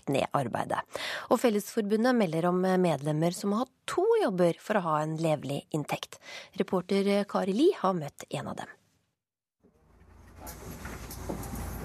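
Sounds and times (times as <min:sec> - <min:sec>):
speech: 0:00.1 - 0:08.8
city bus engine rumbling as it pulls away: 0:09.8 - 0:11.8
road noise of a city bus: 0:09.8 - 0:11.8.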